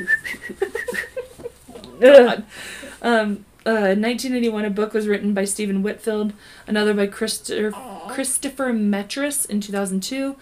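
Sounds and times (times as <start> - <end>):
person whistling bright wavering notes: 0.0 - 1.1
speech: 2.0 - 10.4.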